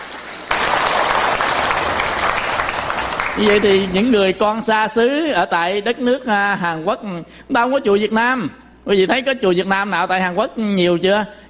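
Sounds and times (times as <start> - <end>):
audience applause: 0.0 - 4.2
speech: 3.4 - 11.4.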